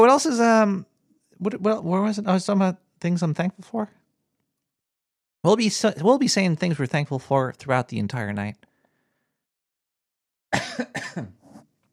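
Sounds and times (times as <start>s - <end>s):
speech: 0.0s - 4.0s, 5.4s - 8.7s, 10.5s - 11.4s
harsh coughs: 10.5s - 11.6s.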